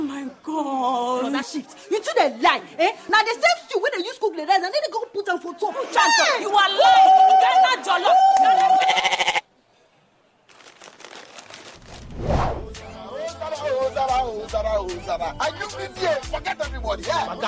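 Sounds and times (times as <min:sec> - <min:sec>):
speech: 0:01.4 - 0:09.0, 0:14.8 - 0:17.4
goat bleating: 0:08.8 - 0:09.5
rhythmic music with a steady beat: 0:12.6 - 0:17.4.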